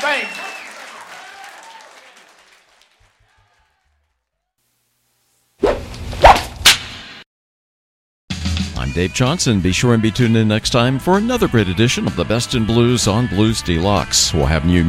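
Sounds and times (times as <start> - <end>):
audience applause for a blues band: 0.0 - 4.1
loud swooshing whip-like noise: 5.6 - 6.5
speech: 8.8 - 14.8.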